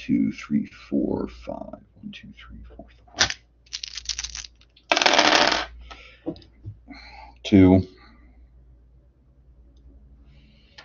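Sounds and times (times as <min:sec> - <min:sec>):
speech: 0:00.0 - 0:03.3, 0:07.4 - 0:08.0
dice rattling: 0:03.2 - 0:05.7.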